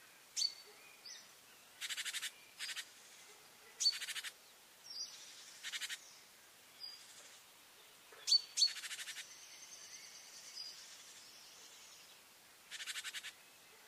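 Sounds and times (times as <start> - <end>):
soft hiss: 0.0 - 13.8
great tit Parus major calling: 0.4 - 2.9, 3.8 - 6.2, 8.2 - 9.4, 12.7 - 13.8.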